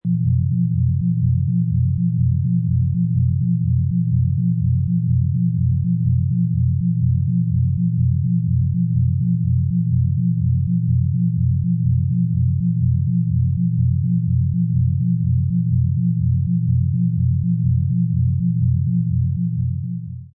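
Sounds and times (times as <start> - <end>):
pulsating sci-fi ambient hum of a spaceship: 0.1 - 20.3.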